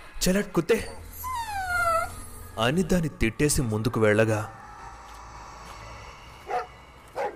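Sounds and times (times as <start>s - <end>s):
low hum: 0.0s - 7.3s
speech: 0.2s - 1.0s, 2.6s - 4.6s
stray street dog barking: 6.5s - 7.3s.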